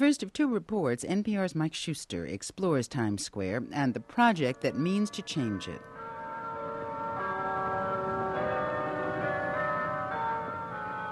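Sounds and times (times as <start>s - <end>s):
speech: 0.0s - 6.0s
church bells tolling: 4.5s - 11.1s.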